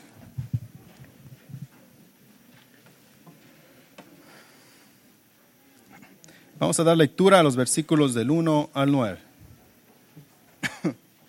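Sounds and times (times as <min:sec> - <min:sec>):
speech: 0:06.6 - 0:09.3
man coughing during a Bible reading: 0:10.6 - 0:11.0.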